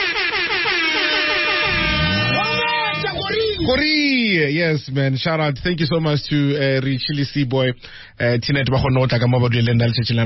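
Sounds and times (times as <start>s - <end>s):
loud blaring air horn blast: 0.0s - 3.3s
rumbling low tone: 1.6s - 3.2s
speech: 3.7s - 10.2s.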